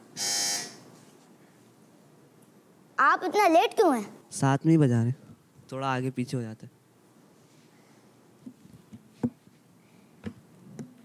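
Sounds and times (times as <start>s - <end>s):
quiz game electronic buzzer: 0.2s - 0.8s
speech: 3.0s - 6.8s.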